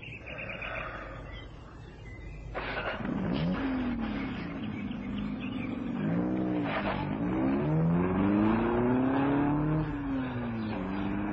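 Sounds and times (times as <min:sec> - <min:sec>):
car engine revving: 0:02.4 - 0:11.3.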